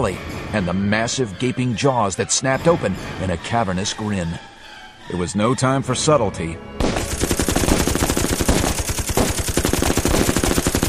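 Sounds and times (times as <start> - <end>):
speech: 0.0 - 4.5, 5.1 - 7.0
rapid automatic gunfire fired into a large attacking predator: 6.8 - 10.8.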